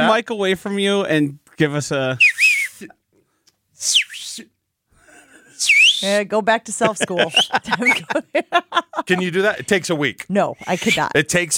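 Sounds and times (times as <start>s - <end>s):
speech: 0.2s - 3.0s, 3.8s - 4.5s, 5.6s - 11.5s
loud shrill coach-style mouth whistle: 2.2s - 3.0s, 3.8s - 4.5s, 5.6s - 6.2s, 7.3s - 8.0s
laughter: 6.8s - 9.8s.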